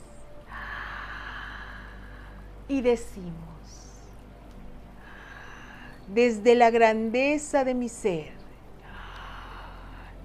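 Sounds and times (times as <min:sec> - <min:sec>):
deep breath inhale during a guided spiritual meditation: 0:00.5 - 0:02.6, 0:05.0 - 0:06.1, 0:08.8 - 0:10.2
speech: 0:02.7 - 0:03.9, 0:06.1 - 0:08.4.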